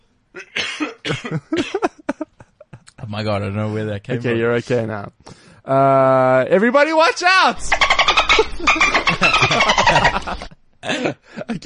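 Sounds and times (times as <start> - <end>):
person with an itchy throat coughing: 0.4 - 2.1
speech: 1.1 - 1.9, 3.1 - 7.9, 8.6 - 11.6
laughter: 1.1 - 3.1, 7.7 - 11.6.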